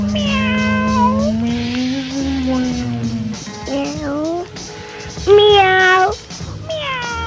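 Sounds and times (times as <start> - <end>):
cat meowing: 0.0 - 4.6, 5.2 - 7.2.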